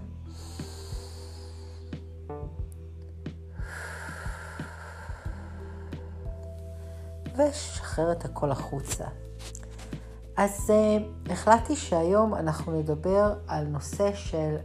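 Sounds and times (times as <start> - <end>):
slow deep belly breath in and out: 0.2 - 2.2, 3.5 - 7.3
speech: 7.4 - 9.3, 10.4 - 14.6.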